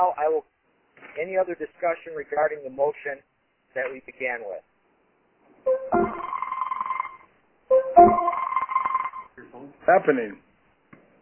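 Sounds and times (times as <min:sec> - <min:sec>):
speech: 0:00.0 - 0:04.7, 0:09.5 - 0:10.4
telephone ringing with an electronic trill: 0:05.7 - 0:09.3.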